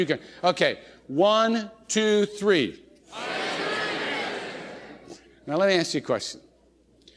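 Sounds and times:
speech: 0:00.0 - 0:03.4, 0:05.5 - 0:06.4
large crowd shouting many different names: 0:03.1 - 0:05.1.

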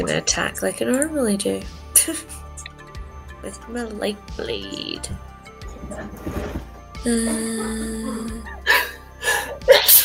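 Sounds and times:
speech: 0:00.0 - 0:02.4, 0:03.4 - 0:08.6
person sneezing: 0:07.1 - 0:10.0.

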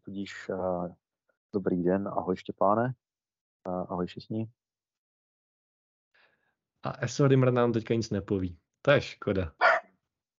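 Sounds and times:
speech: 0:00.1 - 0:03.0, 0:03.6 - 0:04.6, 0:06.8 - 0:09.6
pet dog barking in a backyard on a summer day: 0:09.6 - 0:09.9.

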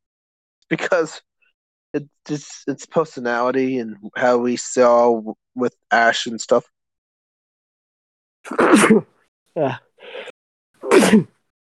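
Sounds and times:
speech: 0:00.7 - 0:01.3, 0:01.9 - 0:06.8, 0:08.5 - 0:10.3, 0:11.0 - 0:11.3
man sneezing: 0:08.5 - 0:09.1, 0:10.8 - 0:11.4.

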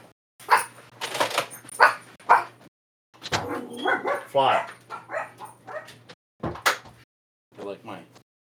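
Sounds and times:
several dogs barking and yipping in a room: 0:00.4 - 0:00.8, 0:01.7 - 0:02.6, 0:03.3 - 0:06.2
speech: 0:03.8 - 0:04.8.

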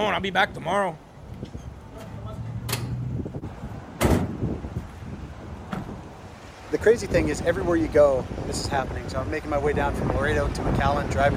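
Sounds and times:
speech: 0:00.0 - 0:01.1, 0:06.7 - 0:11.3
steady wind: 0:00.0 - 0:11.3
van sliding door slamming shut: 0:04.0 - 0:04.5.

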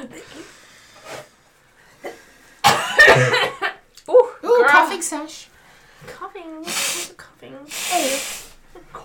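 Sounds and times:
person coughing: 0:02.6 - 0:03.6
person blowing nose: 0:06.6 - 0:08.6.

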